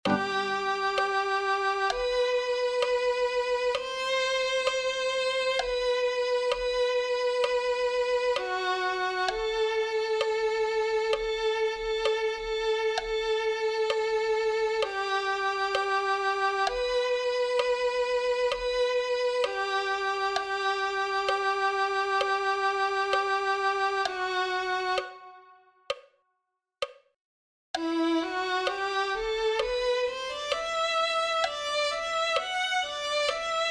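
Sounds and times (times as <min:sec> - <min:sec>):
violin playing: 0:00.0 - 0:25.6, 0:27.8 - 0:33.6.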